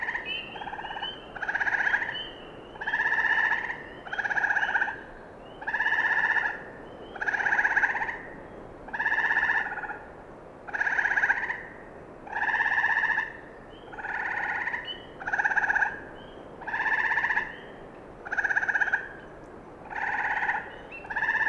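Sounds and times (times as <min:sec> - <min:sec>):
frog calling with a short buzzy trill at a wetland in the evening: 0:00.0 - 0:05.0, 0:05.6 - 0:08.2, 0:08.9 - 0:10.0, 0:10.7 - 0:11.6, 0:12.3 - 0:16.0, 0:16.6 - 0:17.6, 0:18.2 - 0:19.2, 0:19.9 - 0:21.4
low murmur of Green Frog, Spring Peepers and Gray Tree Frogs: 0:00.0 - 0:21.4.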